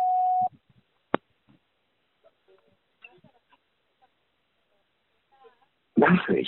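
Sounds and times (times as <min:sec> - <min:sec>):
answering machine beep tone: 0:00.0 - 0:00.5.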